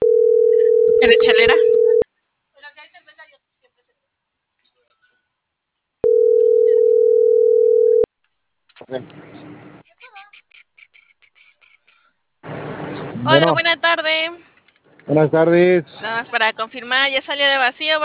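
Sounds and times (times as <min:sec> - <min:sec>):
telephone line tone of an unanswered call: 0:00.0 - 0:02.0, 0:06.0 - 0:08.1
speech: 0:01.0 - 0:01.8, 0:08.9 - 0:09.3, 0:13.2 - 0:14.5, 0:15.1 - 0:18.0.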